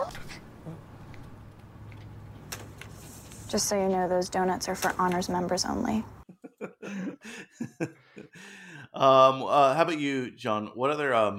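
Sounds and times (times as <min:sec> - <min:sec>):
small dog whimpering: 0:00.0 - 0:00.8
speech: 0:03.5 - 0:06.2, 0:09.0 - 0:11.3
laughter: 0:06.3 - 0:08.9.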